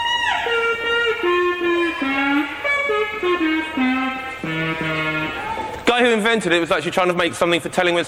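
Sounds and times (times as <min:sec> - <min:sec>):
wavering electronic instrument tone played through an amplifier: 0:00.0 - 0:05.6
speech: 0:06.2 - 0:08.0.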